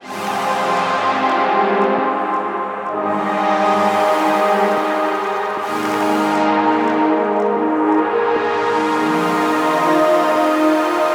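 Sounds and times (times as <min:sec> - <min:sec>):
synth atmosphere loop in F at 172 bpm: 0:00.0 - 0:11.1.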